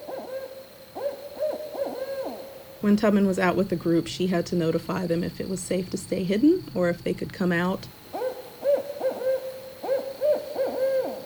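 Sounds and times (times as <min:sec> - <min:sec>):
barred owl hooting: 0:00.0 - 0:03.8, 0:07.9 - 0:11.2
faint steady hum: 0:00.0 - 0:11.2
speech: 0:02.8 - 0:08.0.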